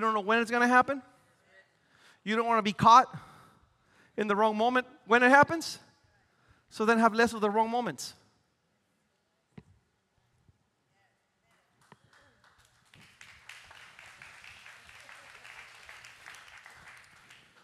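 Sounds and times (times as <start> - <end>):
speech: 0.0 - 1.2, 2.2 - 3.3, 4.2 - 5.9, 6.7 - 8.2
audience clapping: 11.8 - 17.6.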